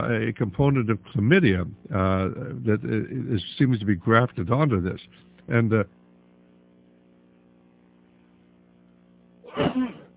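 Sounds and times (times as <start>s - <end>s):
speech: 0.0s - 6.0s
sneeze aimed away from the microphone: 9.5s - 10.1s.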